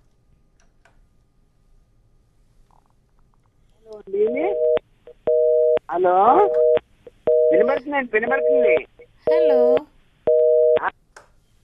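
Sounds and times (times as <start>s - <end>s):
telephone busy signal on a call-in line: 4.2s - 5.8s, 6.4s - 10.9s
speech: 5.9s - 6.6s, 7.5s - 9.9s.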